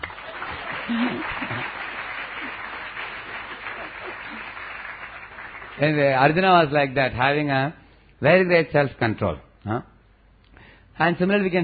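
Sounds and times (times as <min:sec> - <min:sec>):
room full of people applauding: 0:00.0 - 0:06.4
speech: 0:00.9 - 0:01.8, 0:05.8 - 0:09.9, 0:11.0 - 0:11.6.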